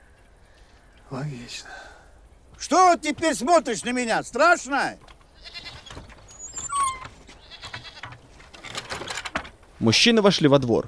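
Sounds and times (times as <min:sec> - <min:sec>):
speech: 0:01.1 - 0:01.9, 0:02.6 - 0:05.6, 0:09.8 - 0:10.8
clattering: 0:05.0 - 0:09.7
goat bleating while lowered on a rope from a roof: 0:05.3 - 0:06.0, 0:06.6 - 0:08.2.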